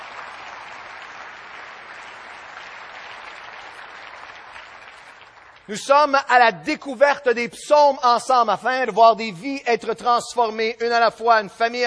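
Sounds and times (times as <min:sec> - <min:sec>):
audience applauding: 0:00.0 - 0:06.2
speech: 0:05.7 - 0:11.8.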